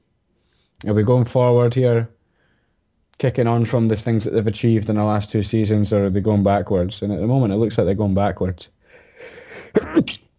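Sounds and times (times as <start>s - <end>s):
soft inhale: 0.3s - 0.8s, 2.2s - 2.9s, 8.8s - 9.7s
speech: 0.8s - 2.2s, 3.2s - 10.2s
sneeze: 9.7s - 10.3s.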